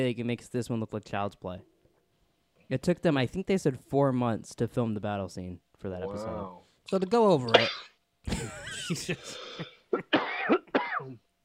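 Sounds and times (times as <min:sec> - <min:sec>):
speech: 0:00.0 - 0:01.7, 0:02.7 - 0:10.2
person clearing throat and nearly coughing: 0:07.5 - 0:08.0, 0:09.2 - 0:11.2.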